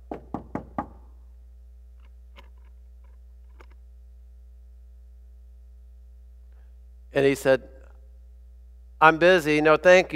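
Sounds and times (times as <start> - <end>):
firm knocking on a door: 0.0 - 1.0
faint low hum: 0.0 - 10.1
speech: 7.2 - 7.8, 9.0 - 10.1.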